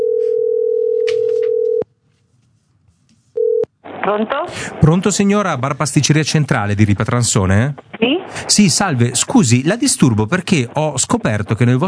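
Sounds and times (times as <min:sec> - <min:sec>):
telephone dial tone: 0:00.0 - 0:01.8, 0:03.4 - 0:03.7
speech: 0:04.1 - 0:11.8.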